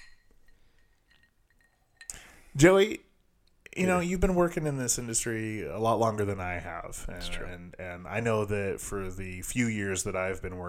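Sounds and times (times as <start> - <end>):
cocktail glasses clinking in a toast: 0.0 - 2.3
speech: 2.6 - 3.1, 3.8 - 10.6.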